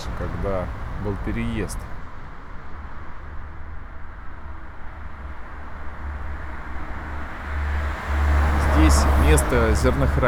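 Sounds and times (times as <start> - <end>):
vehicle passing by: 0.0 - 3.0, 5.0 - 10.2
road traffic roar at a highway interchange: 0.0 - 10.2
speech: 0.2 - 1.9, 8.9 - 10.2.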